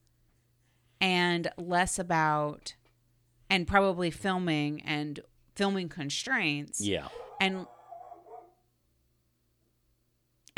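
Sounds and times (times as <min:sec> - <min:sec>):
speech: 0:01.0 - 0:02.8, 0:03.5 - 0:07.8
dog wavering vocal grumbling: 0:06.8 - 0:08.6
dog barking: 0:07.0 - 0:08.6.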